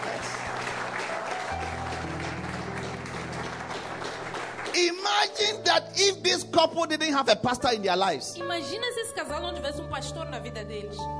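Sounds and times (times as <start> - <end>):
applause during a church service: 0.0 - 5.6
speech: 4.8 - 11.1.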